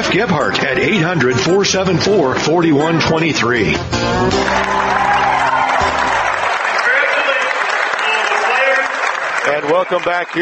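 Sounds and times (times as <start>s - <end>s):
speech: 0.1s - 5.2s, 9.5s - 10.3s
crowd cheering and shouting: 2.4s - 10.3s
large crowd applauding for a state champion football team: 4.1s - 10.3s.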